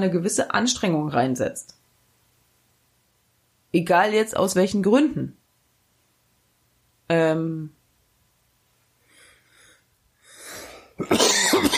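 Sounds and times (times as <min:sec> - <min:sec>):
speech: 0:00.0 - 0:01.8, 0:03.7 - 0:05.4, 0:07.1 - 0:07.8, 0:11.0 - 0:11.6
short inhale: 0:09.0 - 0:11.0
harsh coughing: 0:11.0 - 0:11.7.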